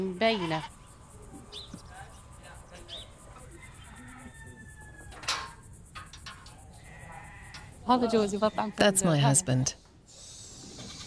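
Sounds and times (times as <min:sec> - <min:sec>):
sheep bleating in a stall during feeding: 0:00.0 - 0:00.8, 0:06.8 - 0:08.8
speech: 0:00.0 - 0:00.8, 0:07.9 - 0:09.8
faint animal calls in a barn: 0:00.0 - 0:11.0.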